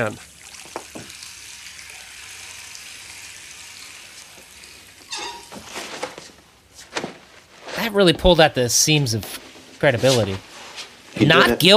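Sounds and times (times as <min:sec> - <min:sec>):
speech: 0:00.0 - 0:00.3, 0:07.8 - 0:10.5, 0:11.2 - 0:11.7
water running steadily from a tap: 0:00.0 - 0:05.5.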